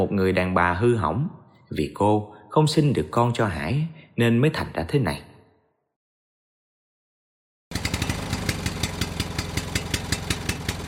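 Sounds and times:
speech: 0:00.1 - 0:05.3
motorcycle engine idling parked in a yard: 0:07.7 - 0:10.8.

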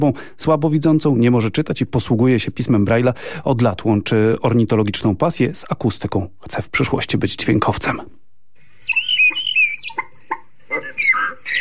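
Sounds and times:
speech: 0:00.0 - 0:08.3
starling song imitating other bird species including blackbird song: 0:08.6 - 0:11.5.

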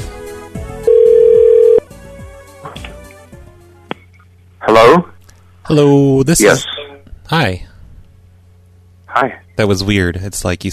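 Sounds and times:
faint hum: 0:00.0 - 0:10.7
electronic phone ringing tone: 0:00.8 - 0:01.8
speech: 0:04.8 - 0:05.1, 0:05.7 - 0:07.7, 0:09.2 - 0:10.7.

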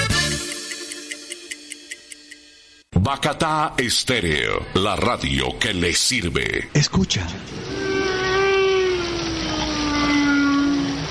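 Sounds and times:
speech: 0:03.1 - 0:07.8
waves on sand: 0:07.6 - 0:11.0
gull crying: 0:07.7 - 0:11.0
whale song: 0:07.7 - 0:11.0.

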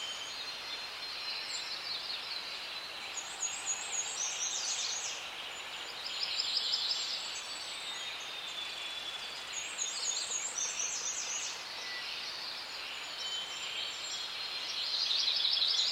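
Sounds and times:
background hiss: 0:00.0 - 0:15.9
forest birds singing in a forest: 0:00.0 - 0:15.9.

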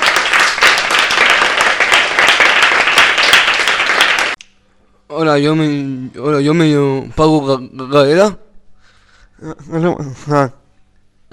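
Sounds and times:
studio audience applause: 0:00.0 - 0:04.4
speech: 0:05.2 - 0:08.4, 0:09.4 - 0:10.6.

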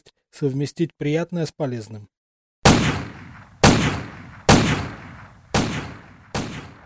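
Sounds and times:
speech: 0:00.0 - 0:02.2
pistol shots fired at a steel target plate during weapon testing: 0:02.6 - 0:06.8.

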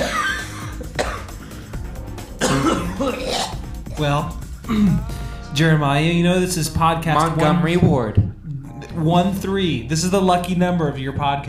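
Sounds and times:
person coughing from a sore throat: 0:00.0 - 0:01.5, 0:02.4 - 0:05.1
speech: 0:04.0 - 0:08.2, 0:09.0 - 0:11.4.

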